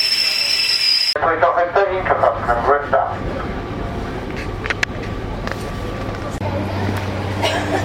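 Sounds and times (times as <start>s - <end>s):
high squealing tones of train: 0.0s - 1.2s
train rolling in alongside a station platform with low rumble and hiss: 0.0s - 7.8s.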